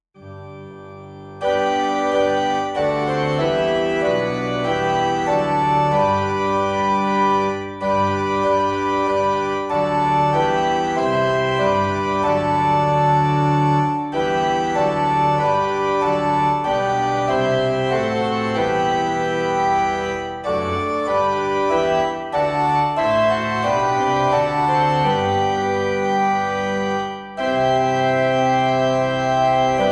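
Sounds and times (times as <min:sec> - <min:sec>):
organ playing a hymn: 0:00.2 - 0:29.8.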